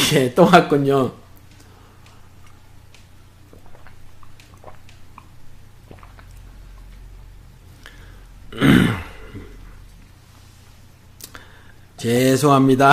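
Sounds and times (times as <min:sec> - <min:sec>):
speech: 0:00.1 - 0:01.2, 0:12.0 - 0:12.9
person swallowing water: 0:03.4 - 0:10.1.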